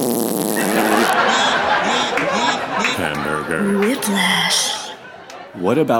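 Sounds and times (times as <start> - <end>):
person making a buzzy raspberry imitating a fart: 0.0 - 1.4
laughter: 0.6 - 5.7
speech: 3.6 - 4.7, 5.6 - 5.9.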